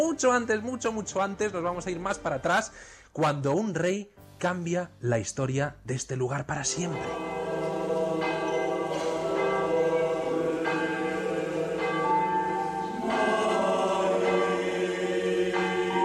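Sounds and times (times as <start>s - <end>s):
speech: 0.0s - 7.4s
monastery church bells pealing: 6.7s - 16.0s.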